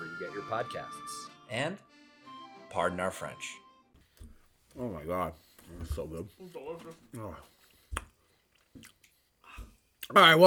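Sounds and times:
speech: 0:00.3 - 0:01.9, 0:02.7 - 0:03.6, 0:04.8 - 0:07.6, 0:08.8 - 0:09.0, 0:10.1 - 0:10.4
chewing while eating pizza: 0:07.1 - 0:10.1
soft moist bites into pizza: 0:07.1 - 0:10.2.

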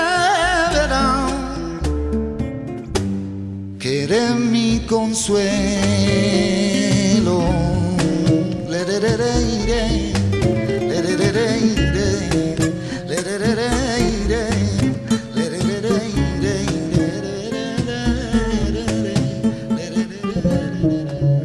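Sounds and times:
male singer's expressive wavering vocal: 0:00.0 - 0:02.2, 0:03.8 - 0:21.4
busy acoustic guitar accompaniment with plucked strings: 0:00.0 - 0:21.4
speech: 0:04.9 - 0:06.6.

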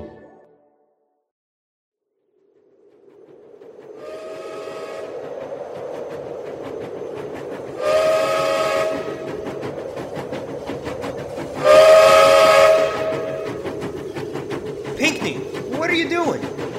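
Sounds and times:
steady rumbling background: 0:02.4 - 0:16.7
steam train whistle blasts on a cold snowy winter night: 0:04.0 - 0:05.1, 0:07.8 - 0:09.2, 0:11.6 - 0:13.5
voices: 0:14.9 - 0:16.7.

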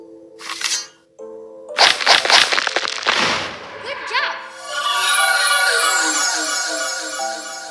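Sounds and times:
sword striking and breaking an obstacle block in a video game: 0:01.8 - 0:03.6
sustained bright shimmering video game effect: 0:03.8 - 0:07.7.

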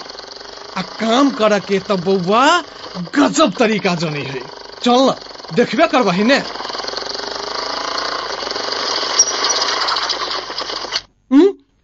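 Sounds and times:
motorcycle engine running with rough rapid chugging: 0:00.0 - 0:11.0
speech: 0:00.8 - 0:06.6
brief vocal sound: 0:11.3 - 0:11.7.

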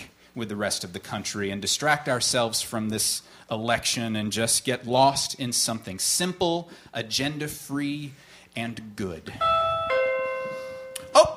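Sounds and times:
speech: 0:00.4 - 0:09.7
doorbell chime: 0:09.4 - 0:11.3.

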